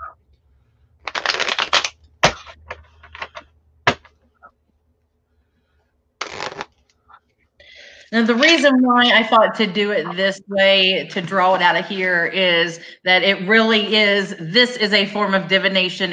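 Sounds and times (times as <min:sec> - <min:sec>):
gilded tarot cards being shuffled: 0:01.0 - 0:04.1, 0:06.2 - 0:06.9
speech: 0:08.1 - 0:16.1.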